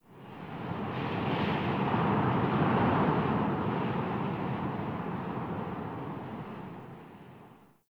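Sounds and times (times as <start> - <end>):
heavy fast wind gusts: 0.1 - 7.6.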